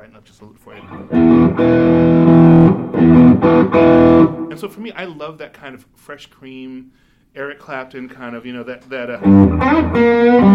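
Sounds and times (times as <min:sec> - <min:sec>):
speech: 0:00.1 - 0:01.8, 0:04.6 - 0:10.5
electric guitar through distortion pedal and low amp playing chords: 0:00.8 - 0:04.6, 0:09.2 - 0:10.5.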